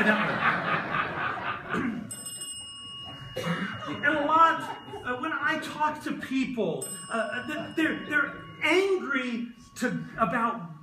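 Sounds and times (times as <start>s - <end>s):
laughter: 0.0s - 2.1s, 3.1s - 5.6s, 7.1s - 8.6s
small bell pressed and ringing: 2.0s - 10.8s
speech: 5.7s - 10.7s.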